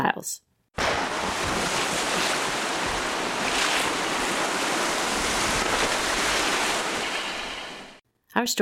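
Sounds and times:
gusting wind: 0:00.8 - 0:08.0
stormy surf pounding against rocks: 0:00.8 - 0:08.0.

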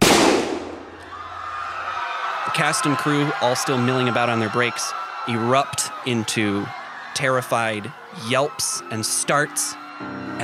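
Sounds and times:
gunshot: 0:00.0 - 0:01.0
speech: 0:02.5 - 0:10.4.

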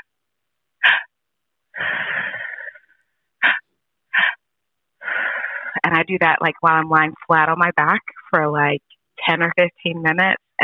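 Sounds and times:
person doing a three-part breath, in through belly and chest, out through mouth: 0:00.8 - 0:01.1, 0:01.8 - 0:04.4, 0:05.0 - 0:05.8
speech: 0:05.9 - 0:10.6.

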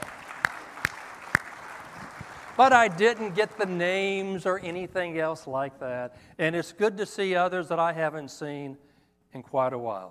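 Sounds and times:
sharper closer hand claps: 0:00.0 - 0:03.8
light scattered applause from a gathered crowd: 0:00.0 - 0:04.3
speech: 0:02.6 - 0:10.0.

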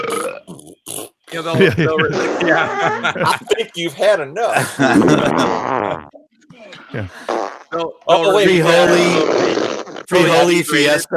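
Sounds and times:
speech: 0:01.3 - 0:05.8, 0:06.9 - 0:07.4, 0:08.1 - 0:09.5, 0:10.1 - 0:11.1
chuckling: 0:01.4 - 0:06.0
fart noises: 0:02.0 - 0:03.2, 0:04.9 - 0:06.2, 0:07.3 - 0:07.7, 0:08.7 - 0:10.4.

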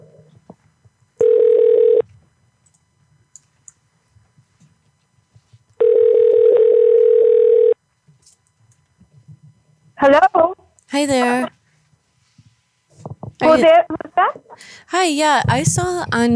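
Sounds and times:
telephone tone bursts from an internet calling service: 0:01.2 - 0:02.0, 0:05.8 - 0:07.8
speech: 0:10.1 - 0:10.3, 0:11.0 - 0:11.6, 0:13.4 - 0:16.3.

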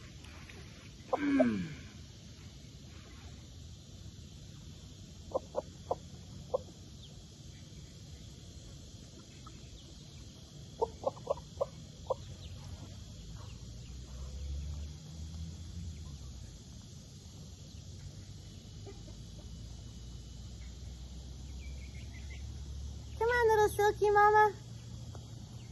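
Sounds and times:
steady outdoor hum: 0:00.0 - 0:25.7
backyard chickens, silkie hen and frizzle rooster, clucking while fed breadcrumbs: 0:09.0 - 0:14.3, 0:18.4 - 0:20.0.

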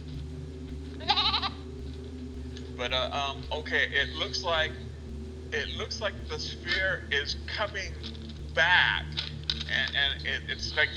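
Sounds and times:
steady low hum: 0:00.0 - 0:10.9
agitated goat bleating: 0:01.0 - 0:01.6
speech: 0:02.8 - 0:04.9, 0:05.5 - 0:10.9.

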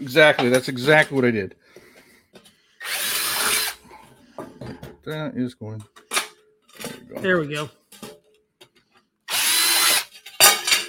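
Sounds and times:
speech: 0:00.0 - 0:01.8, 0:04.7 - 0:06.0, 0:07.1 - 0:07.8
power drill drilling a pilot hole: 0:02.8 - 0:03.8, 0:09.3 - 0:10.1.

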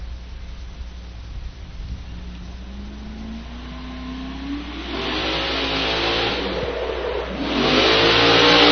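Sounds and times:
racing truck engine revving hard during a team competition run: 0:02.2 - 0:08.7.

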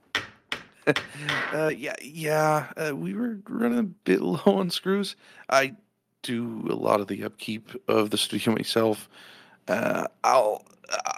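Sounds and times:
studio door with super-glued hinge knocking: 0:00.0 - 0:01.6
speech: 0:00.8 - 0:11.1.

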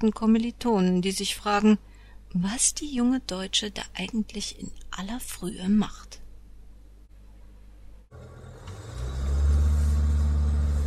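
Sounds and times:
speech: 0:00.0 - 0:06.2
car engine rumbling as it drives past: 0:08.1 - 0:10.8.

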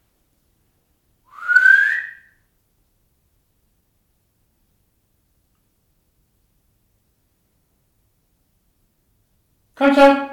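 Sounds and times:
person whistling a rising tone: 0:01.3 - 0:02.4
speech: 0:09.8 - 0:10.2.

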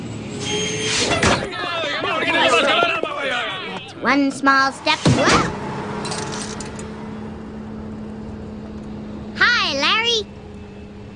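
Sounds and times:
bus rumbling: 0:00.0 - 0:11.1
bus doors hissing and thumping open: 0:00.3 - 0:01.6
voices chattering: 0:01.3 - 0:05.7
speech: 0:04.0 - 0:05.6.

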